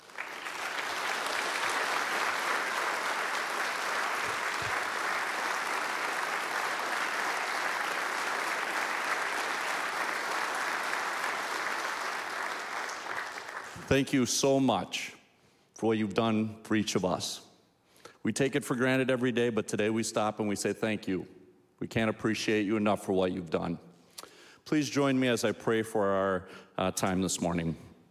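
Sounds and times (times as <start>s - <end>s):
large audience applauding veterans and service members: 0.0s - 13.9s
speech: 13.9s - 15.2s, 15.8s - 17.5s, 18.2s - 23.9s, 24.6s - 27.9s.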